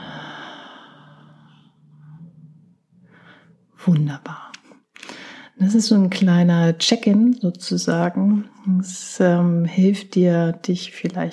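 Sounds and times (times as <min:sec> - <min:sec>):
faint breath sounds: 0:00.0 - 0:03.7
speech: 0:03.8 - 0:04.5, 0:05.6 - 0:11.3.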